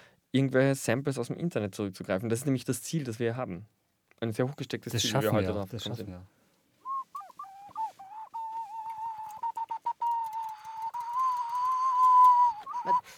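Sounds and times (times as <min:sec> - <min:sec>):
speech: 0:00.3 - 0:06.4
water whistle in China imitating a bird: 0:06.8 - 0:13.1.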